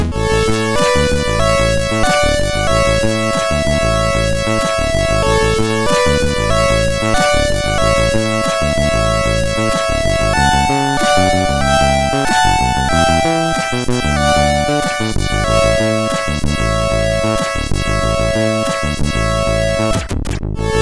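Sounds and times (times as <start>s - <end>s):
MOS6581R4 SID sound chip tone in A major: 0.1s - 20.7s.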